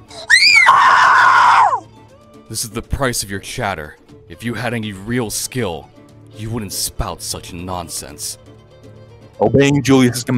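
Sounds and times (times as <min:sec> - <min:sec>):
woman's piercing scream: 0:00.0 - 0:01.8
speech: 0:02.5 - 0:08.4, 0:09.4 - 0:10.3.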